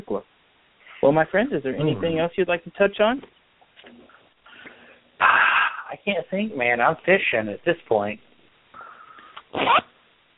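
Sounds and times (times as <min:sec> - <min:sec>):
speech: 0:00.1 - 0:00.3, 0:01.0 - 0:03.4, 0:06.0 - 0:08.3
clothing zipper being zipped: 0:09.5 - 0:09.9.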